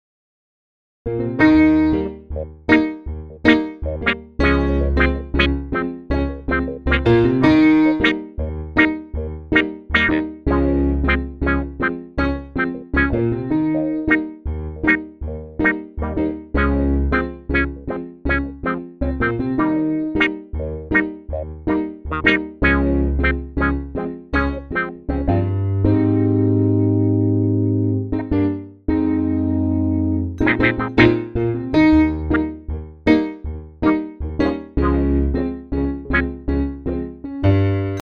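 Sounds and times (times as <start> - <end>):
clavinet: 1.1 - 28.5, 29.7 - 33.2, 33.8 - 35.4, 36.0 - 36.6
piano: 1.1 - 38.0.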